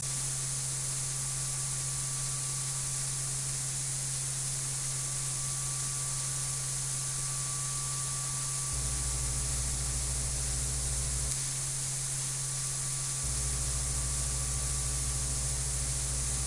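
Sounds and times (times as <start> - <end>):
high hiss: 0.0 - 16.4.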